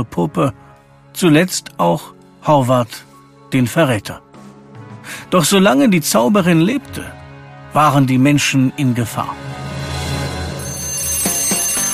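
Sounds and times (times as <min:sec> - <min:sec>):
speech: 0:00.0 - 0:00.6, 0:01.2 - 0:04.2, 0:05.1 - 0:09.6
toy alarm clock ringing with a sustained electronic tone: 0:10.4 - 0:11.9.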